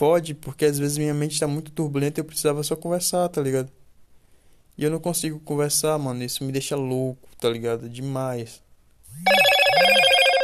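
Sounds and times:
speech: 0.0s - 3.8s, 4.8s - 10.0s
phone notification alert, bright buzzy electronic chime: 9.3s - 10.4s.

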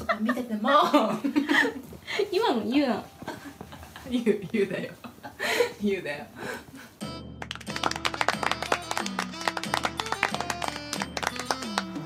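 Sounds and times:
speech: 0.2s - 1.2s, 2.6s - 3.2s, 4.1s - 5.0s, 5.8s - 6.6s
gentle hand clapping from a few people: 7.4s - 12.0s.

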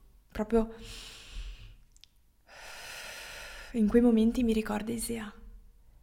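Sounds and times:
speech: 0.4s - 1.1s, 3.7s - 5.4s
slow inhale and exhale breathing: 0.8s - 1.8s, 2.5s - 3.8s.

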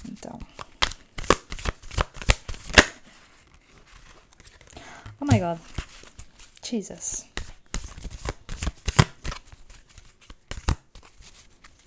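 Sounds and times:
stiff playing cards being shuffled: 0.0s - 6.6s, 7.2s - 11.8s
speech: 0.2s - 0.6s, 5.2s - 5.8s, 6.7s - 7.3s.

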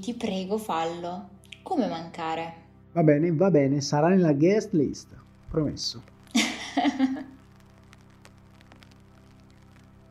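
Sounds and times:
speech: 0.0s - 6.1s
rain falling steadily: 5.0s - 10.0s
laughter: 6.3s - 7.3s.

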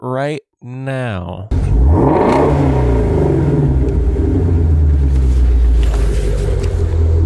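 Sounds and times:
speech: 0.0s - 3.7s
2020 Ford Mustang Shelby GT350 5.2-liter flat-plane-crank 526-horsepower V8 engine revving: 1.5s - 7.2s.

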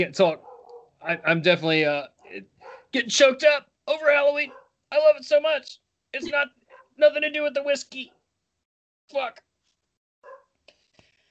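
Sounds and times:
speech: 0.0s - 0.4s, 1.0s - 8.2s, 9.1s - 9.5s
pet dog yelping softly: 0.4s - 1.4s, 2.2s - 3.0s, 4.5s - 4.8s, 6.7s - 7.0s, 10.2s - 10.5s.

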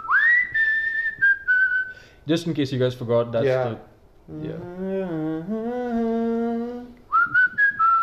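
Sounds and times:
man whistling a film melody: 0.0s - 2.0s, 7.1s - 8.0s
speech: 2.2s - 5.6s
man humming a sliding film melody: 4.3s - 8.0s.

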